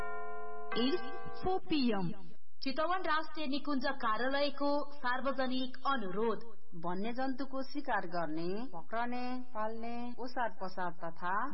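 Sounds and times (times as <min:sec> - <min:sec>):
radio station hourly time signal chime: 0:00.0 - 0:01.5
speech: 0:00.8 - 0:11.5.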